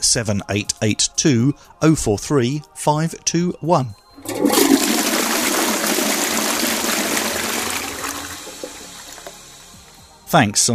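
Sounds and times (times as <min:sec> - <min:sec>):
speech: 0:00.0 - 0:04.6, 0:10.3 - 0:10.7
toilet flushing with rushing water and draining swirl: 0:04.2 - 0:10.0.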